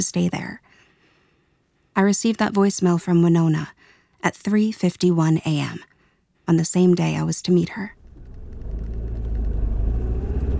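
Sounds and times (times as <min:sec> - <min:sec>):
speech: 0:00.0 - 0:00.6, 0:02.0 - 0:05.9, 0:06.5 - 0:08.0
car engine rumbling while driving: 0:08.0 - 0:10.5.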